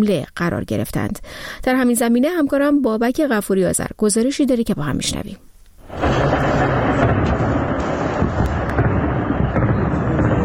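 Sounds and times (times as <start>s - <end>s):
speech: 0.0s - 6.0s
anti-aircraft gunfire: 5.8s - 10.4s
continuous booming rumble of explosions: 5.8s - 10.4s.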